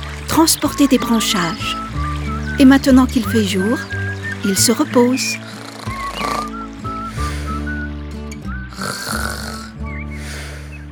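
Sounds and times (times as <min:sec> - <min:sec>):
speech: 0:00.4 - 0:01.8, 0:02.6 - 0:05.5
faint higher whistling tones: 0:00.7 - 0:10.9
snoring: 0:05.4 - 0:06.6, 0:08.7 - 0:10.7.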